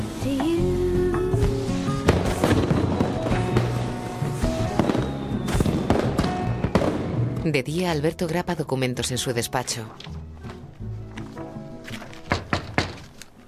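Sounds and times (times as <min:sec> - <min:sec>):
fireworks exploding at night: 0:00.0 - 0:07.5
speech: 0:00.2 - 0:00.6, 0:07.5 - 0:10.1.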